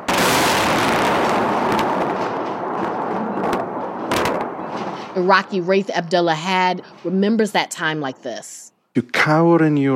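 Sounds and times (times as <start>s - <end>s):
explosions from bombing of a city: 0.0s - 5.6s
speech: 5.2s - 9.9s.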